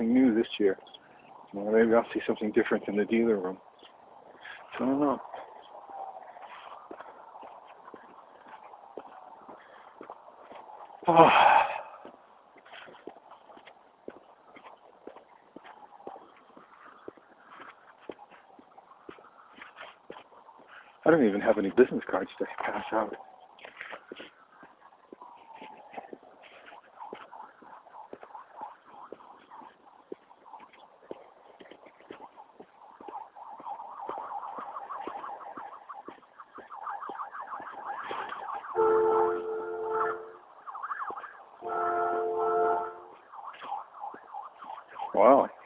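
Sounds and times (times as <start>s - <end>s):
speech: 0.0s - 3.7s, 4.7s - 5.4s, 11.1s - 11.6s, 21.1s - 23.3s
emergency siren wailing and warbling: 0.0s - 45.6s
loud sustained emergency vehicle horn blasts: 38.8s - 40.4s, 41.6s - 43.2s.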